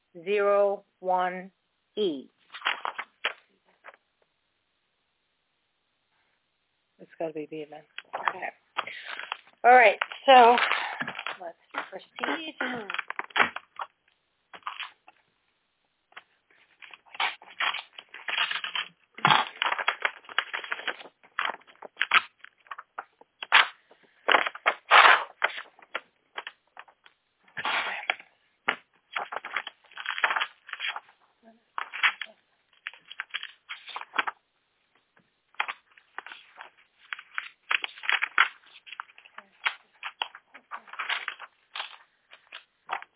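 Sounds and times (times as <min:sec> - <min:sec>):
speech: 0:00.2 - 0:02.4, 0:07.2 - 0:09.0, 0:09.6 - 0:13.0
envelopes being torn open and handled: 0:02.5 - 0:04.0, 0:08.0 - 0:15.2, 0:16.1 - 0:34.4, 0:35.5 - 0:43.1
paper rips, crinkles and rustles: 0:02.5 - 0:04.0, 0:08.0 - 0:13.9, 0:14.6 - 0:15.0, 0:16.6 - 0:31.2, 0:31.8 - 0:34.4, 0:35.5 - 0:43.1.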